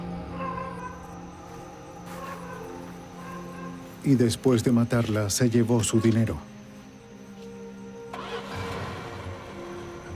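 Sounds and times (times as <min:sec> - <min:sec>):
speech: 0:04.0 - 0:06.5
car engine cranking, catching and idling: 0:08.1 - 0:10.1.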